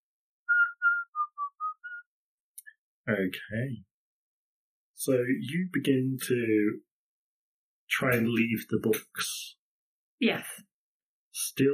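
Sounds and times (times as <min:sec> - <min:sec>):
person whistling a cheerful tune: 0:00.5 - 0:02.0
speech: 0:03.1 - 0:03.9, 0:05.0 - 0:06.9, 0:08.0 - 0:09.6, 0:10.2 - 0:10.7, 0:11.4 - 0:11.7.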